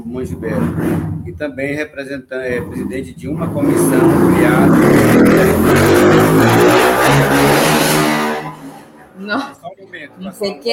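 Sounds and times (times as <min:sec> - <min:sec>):
speech: 0:00.0 - 0:07.7, 0:09.2 - 0:10.7
motorcycle roaring past on a street near an avenue: 0:02.5 - 0:09.1.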